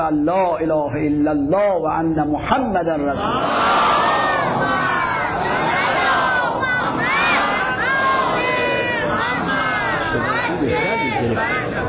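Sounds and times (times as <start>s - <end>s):
speech: 0.0s - 4.8s, 10.2s - 11.8s
large crowd chanting a salawat in unison: 3.2s - 11.8s.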